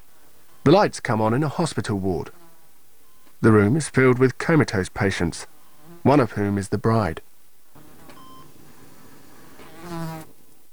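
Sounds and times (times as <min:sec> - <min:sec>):
mosquito buzzing while landing on a patient's skin in a hospital ward: 0:00.0 - 0:03.4, 0:04.6 - 0:10.7
speech: 0:00.7 - 0:02.4, 0:03.4 - 0:07.3.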